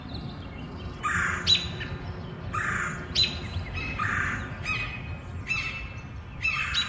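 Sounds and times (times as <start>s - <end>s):
birds chattering and calling in Forest Hills treetops: 0.0s - 6.8s
low steady outdoor hum: 0.0s - 6.8s.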